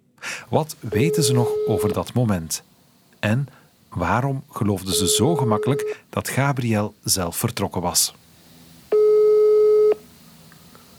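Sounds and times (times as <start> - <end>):
faint hiss: 0.0 - 10.9
speech: 0.5 - 8.3
telephone ringback tone calling a monastery's general number: 0.9 - 2.0, 4.9 - 6.0, 8.9 - 10.0.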